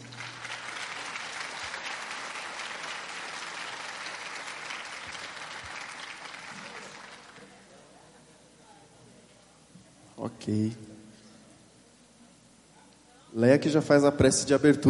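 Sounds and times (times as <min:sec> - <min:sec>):
audience applause at the opening of a tenth national gathering: 0:00.0 - 0:07.7
speech: 0:10.3 - 0:10.9, 0:13.4 - 0:14.8.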